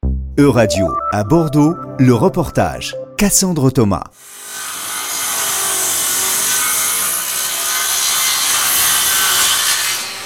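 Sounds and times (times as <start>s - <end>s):
speech: 0.4s - 4.4s
circular saw cutting wood on a construction site: 4.2s - 10.2s.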